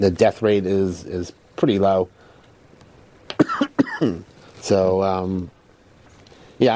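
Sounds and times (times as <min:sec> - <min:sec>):
speech: 0:00.0 - 0:02.2, 0:03.6 - 0:05.6, 0:06.6 - 0:06.7
person coughing: 0:03.3 - 0:04.2
drawn-out voiced hum or groan: 0:03.3 - 0:05.5.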